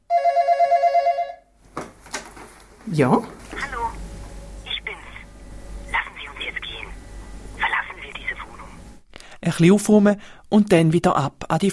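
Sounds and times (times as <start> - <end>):
telephone bell ringing: 0.1 - 1.5
shuffling or rustling: 1.6 - 4.4
speech: 2.9 - 3.8, 9.5 - 11.7.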